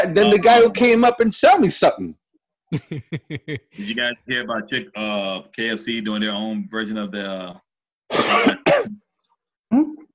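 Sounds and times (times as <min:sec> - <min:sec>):
speech: 0:00.0 - 0:09.0, 0:09.7 - 0:10.0
laughter: 0:02.7 - 0:04.2
person coughing and clearing throat: 0:08.1 - 0:09.0.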